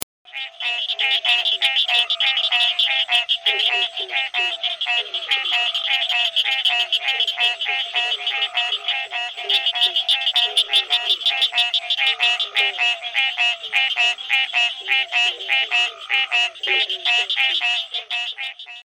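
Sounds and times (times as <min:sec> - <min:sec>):
green tree frog: 0:00.0 - 0:18.9.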